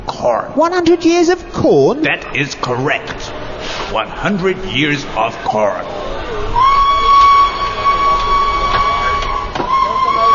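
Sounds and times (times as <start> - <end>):
speech: 0.2 - 6.0
noisy rumble of a train pulling out of the station: 3.0 - 10.3
train whistle as the train pulls out of the station: 6.5 - 10.3.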